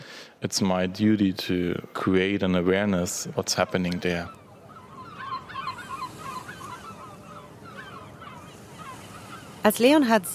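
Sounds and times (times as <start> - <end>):
speech: 0.4 - 4.4, 9.6 - 10.3
gulls calling over the narrow alleys of Barcelona: 2.0 - 10.3
swift cries over the narrow alleys of Barcelona: 4.2 - 9.7.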